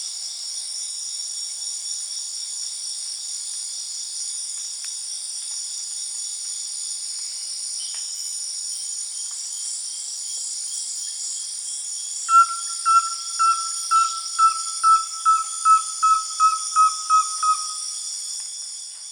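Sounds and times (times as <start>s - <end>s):
insect hiss: 0.0s - 19.1s
rusty-belted tapaculo brief whistled notes at one pitch: 12.3s - 18.1s.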